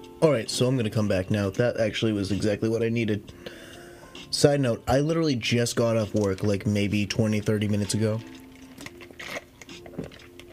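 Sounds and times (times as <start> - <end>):
speech: 0.2 - 3.6, 4.2 - 8.4
person sipping Dr. Pepper soda: 8.3 - 10.5
slurping and swallowing soda: 8.3 - 10.5.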